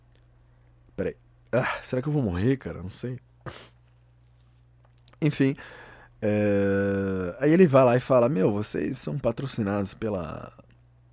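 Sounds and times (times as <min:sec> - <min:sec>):
faint steady hum: 0:00.0 - 0:11.1
speech: 0:01.0 - 0:03.7, 0:05.2 - 0:10.6
person sneezing: 0:03.4 - 0:03.8.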